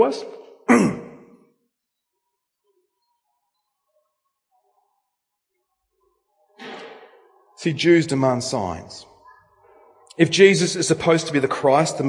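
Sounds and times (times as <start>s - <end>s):
speech: 0.0s - 1.0s, 7.6s - 9.1s, 10.2s - 12.0s
person clearing throat: 0.7s - 1.3s.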